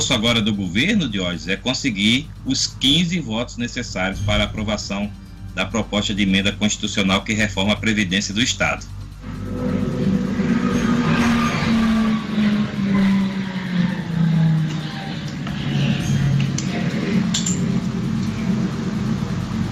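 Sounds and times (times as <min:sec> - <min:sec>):
speech: 0:00.0 - 0:09.8
whining subway train motor tones: 0:00.0 - 0:19.7
subway train rumbling through a station: 0:03.6 - 0:19.7
metallic clinks: 0:15.9 - 0:17.9.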